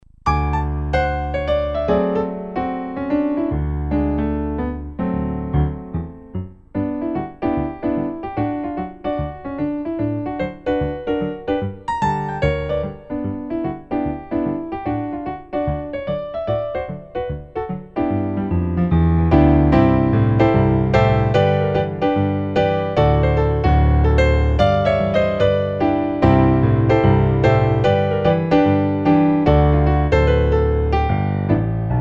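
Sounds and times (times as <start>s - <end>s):
intermediate solo piano piece: 0.0s - 31.9s.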